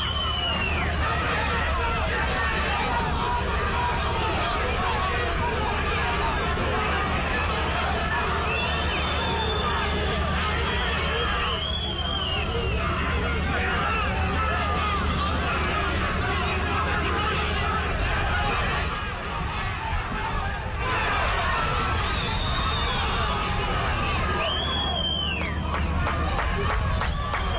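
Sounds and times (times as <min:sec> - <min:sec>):
piercing whistles from stadium fans: 0:00.0 - 0:01.6, 0:08.4 - 0:10.0, 0:11.2 - 0:12.8, 0:21.8 - 0:25.6
large stadium crowd jeering and booing at departing players: 0:00.0 - 0:27.5.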